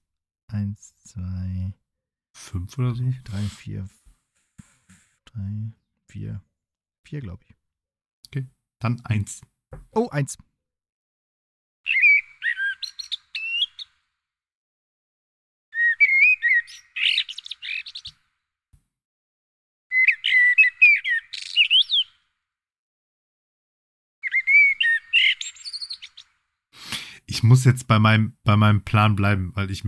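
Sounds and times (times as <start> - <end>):
speech: 0.5 - 1.8, 2.4 - 4.0, 5.3 - 7.6, 8.3 - 10.5, 27.5 - 29.8
common blackbird singing: 11.9 - 13.9, 15.8 - 18.2, 19.9 - 22.2, 24.2 - 26.2.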